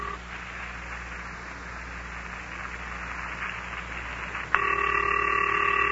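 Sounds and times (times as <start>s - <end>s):
steady electronic telephone ring tone: 0.0s - 0.2s, 4.6s - 5.9s
hissing static-filled telephone line: 0.0s - 5.9s.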